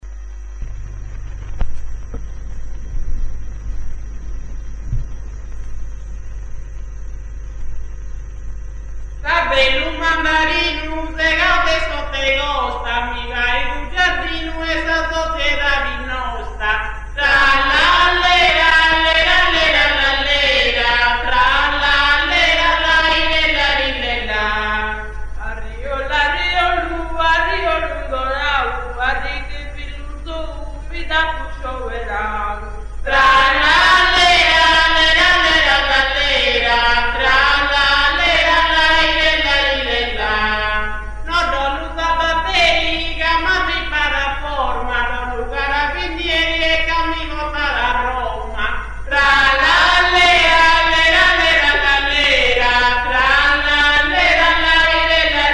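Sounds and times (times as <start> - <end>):
polyphonic singing of mutettus a trallalero in Serramanna: 9.2 - 55.5.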